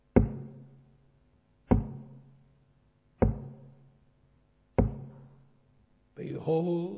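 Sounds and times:
heavy knocks on a door: 0.2s - 0.6s, 1.7s - 2.2s, 3.2s - 3.7s, 4.8s - 5.2s
speech: 6.3s - 6.9s.

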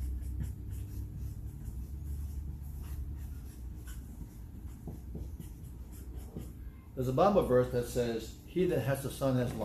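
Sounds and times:
pen scratching across a piece of paper: 0.0s - 6.7s
speech: 7.0s - 9.6s.

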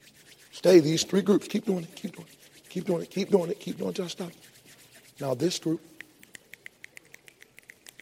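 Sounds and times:
speech: 0.6s - 4.5s, 5.2s - 5.9s
finger snaps from several people imitating light rain: 5.9s - 7.9s.

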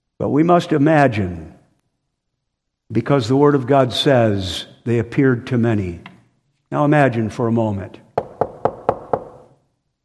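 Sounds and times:
speech: 0.2s - 1.5s, 2.9s - 6.1s, 6.7s - 8.0s
firm knocks on a wooden door: 8.2s - 9.5s.

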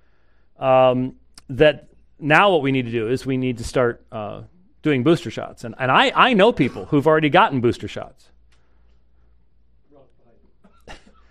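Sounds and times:
speech: 0.6s - 8.3s
single sharp loud cough: 6.6s - 7.0s, 10.6s - 11.2s.

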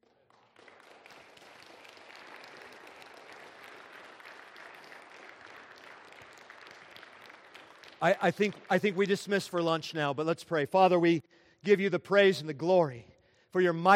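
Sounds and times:
crowd applauding: 0.0s - 10.1s
speech: 8.0s - 13.9s.

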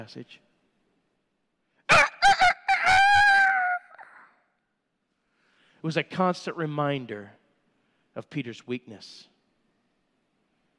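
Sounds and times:
speech: 0.0s - 0.5s, 5.8s - 7.4s, 8.2s - 9.3s
rooster crowing: 1.9s - 4.4s.

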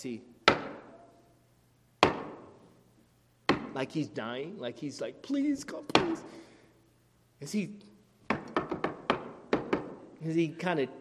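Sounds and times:
speech: 0.0s - 0.3s, 3.8s - 6.5s, 7.4s - 7.9s, 10.2s - 11.0s
sharp knocks on wood: 2.0s - 2.5s, 8.3s - 10.0s.

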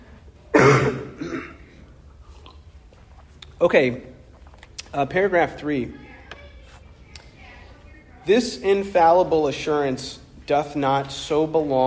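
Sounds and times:
harsh chesty cough from a person getting over the flu: 0.5s - 1.8s
soft throat-clearing rasp: 0.5s - 1.8s
speech: 3.6s - 4.1s, 4.9s - 6.0s, 8.2s - 11.8s.

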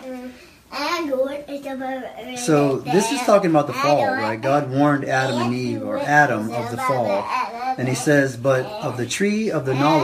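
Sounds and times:
small daughter babbling: 0.7s - 8.0s
speech: 0.7s - 10.0s.

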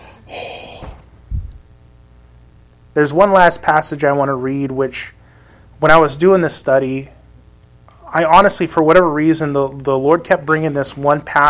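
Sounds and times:
heavy breathing into a microphone: 0.0s - 1.1s, 5.2s - 5.8s
speech: 3.0s - 5.2s, 5.8s - 7.2s, 8.1s - 11.4s.

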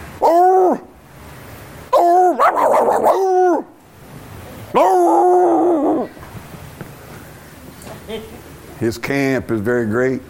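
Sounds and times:
man's voice imitating a pack of dogs barking: 0.2s - 0.9s, 1.9s - 3.8s, 4.7s - 6.2s
speech: 8.1s - 10.2s.

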